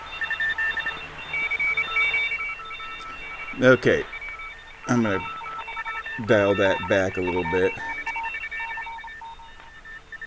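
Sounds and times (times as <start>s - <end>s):
faint telemetry signal tones: 0.0s - 10.2s
speech: 3.6s - 4.1s, 4.9s - 5.4s, 6.2s - 7.9s.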